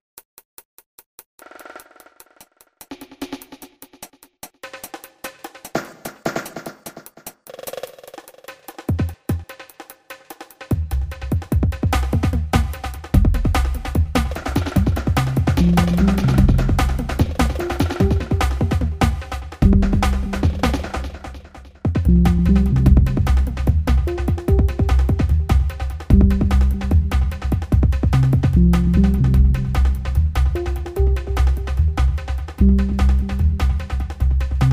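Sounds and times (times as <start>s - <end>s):
synthesizer lead beat performance: 10.7s - 34.7s.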